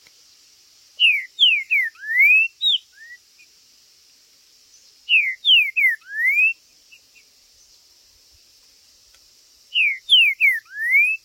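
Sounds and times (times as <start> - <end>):
faint high hiss: 0.0 - 11.2
Green-winged saltator whistled territorial song: 1.0 - 3.2, 5.1 - 6.6, 9.7 - 11.2.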